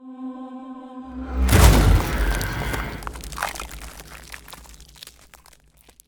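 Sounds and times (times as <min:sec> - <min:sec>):
ice spell teleportation icy step effect: 0:01.2 - 0:06.0.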